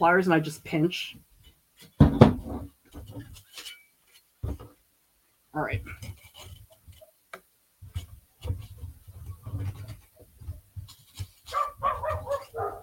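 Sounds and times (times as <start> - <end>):
speech: 0.0 - 3.3, 5.6 - 6.1
neighbour's dog barking outside next door with high-pitched yaps: 11.5 - 12.8.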